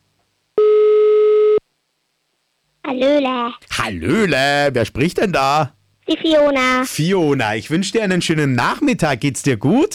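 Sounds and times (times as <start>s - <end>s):
telephone line tone beep while placing a call: 0.6s - 1.6s
speech: 2.9s - 9.9s.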